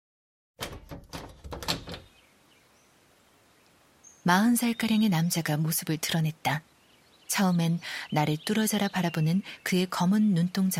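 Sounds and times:
front door latch clicking and rattling while being opened: 0:00.6 - 0:02.2
speech: 0:04.2 - 0:06.7, 0:07.3 - 0:10.7.

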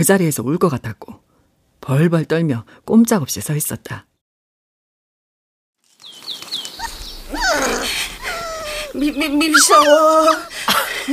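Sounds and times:
speech: 0:00.0 - 0:01.2, 0:01.8 - 0:04.1, 0:09.0 - 0:11.1
small poodle puppy yapping and barking at a passerby: 0:06.8 - 0:10.5.

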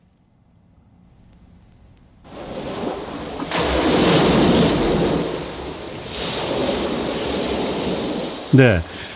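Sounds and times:
ocean waves crashing: 0:02.2 - 0:09.1
speech: 0:08.5 - 0:09.0.

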